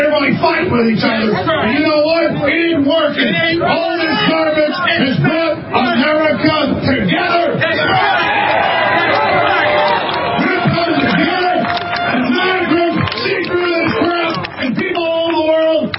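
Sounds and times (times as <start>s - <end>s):
speech: 0.7s - 8.1s
large crowd cheering and shouting: 7.6s - 15.9s.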